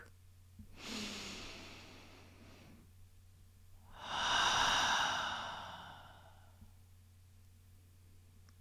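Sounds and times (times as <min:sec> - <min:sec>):
deep breath in and out during a guided meditation: 0:00.8 - 0:02.8, 0:03.9 - 0:06.7.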